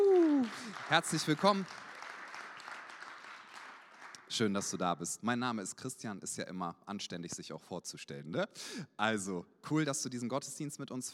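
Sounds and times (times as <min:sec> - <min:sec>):
audience applause at a church service: 0:00.0 - 0:04.3
speech: 0:00.9 - 0:01.8, 0:04.4 - 0:11.1.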